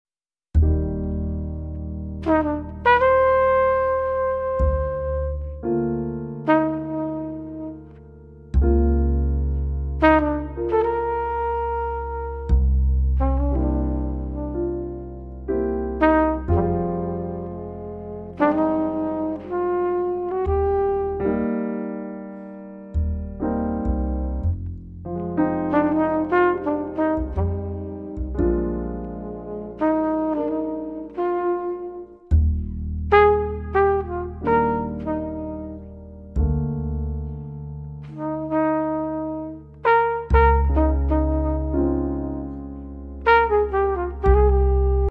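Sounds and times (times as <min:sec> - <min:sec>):
jazz trio playing relaxing instrumental jazz: 0:00.6 - 0:45.0.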